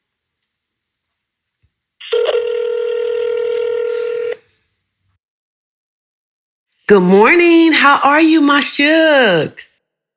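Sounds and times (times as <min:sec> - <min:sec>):
telephone call ringing tone: 0:02.0 - 0:04.4
speech: 0:06.9 - 0:09.7.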